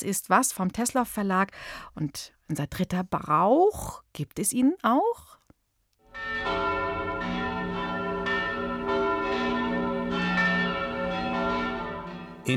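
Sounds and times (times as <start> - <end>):
speech: 0.0 - 5.3
several church bells ringing in an overlapping peal: 6.1 - 12.5.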